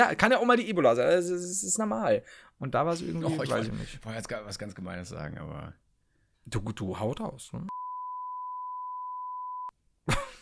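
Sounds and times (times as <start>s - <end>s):
speech: 0.0s - 5.8s, 6.4s - 7.8s
censor bleep tone, steady mid-pitched sine beep: 7.7s - 9.7s.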